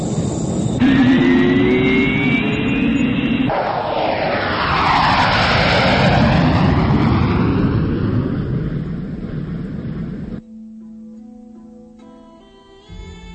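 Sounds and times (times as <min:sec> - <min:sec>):
small airplane taking off from a runway: 0:00.0 - 0:10.4.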